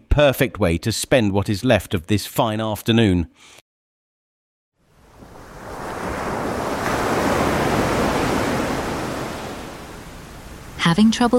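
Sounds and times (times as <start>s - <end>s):
speech: 0.2s - 3.6s, 10.8s - 11.3s
ocean waves breaking on the shore of the Isle of Wight: 4.8s - 11.3s.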